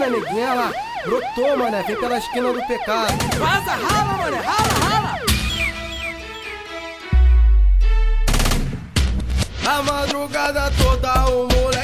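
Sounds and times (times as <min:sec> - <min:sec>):
speech: 0:00.0 - 0:05.3, 0:09.7 - 0:11.8
synth music track: 0:01.2 - 0:09.6
bursts of rapid rifle fire: 0:03.1 - 0:05.1.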